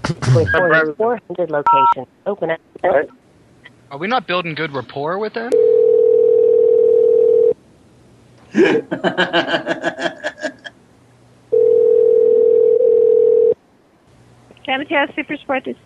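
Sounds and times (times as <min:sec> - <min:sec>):
speech: 0:00.1 - 0:03.2, 0:03.9 - 0:05.8, 0:08.5 - 0:10.6, 0:14.7 - 0:15.8
telephone dial tone after the caller hung up: 0:05.6 - 0:07.5, 0:11.5 - 0:13.6
laughter: 0:08.5 - 0:10.7.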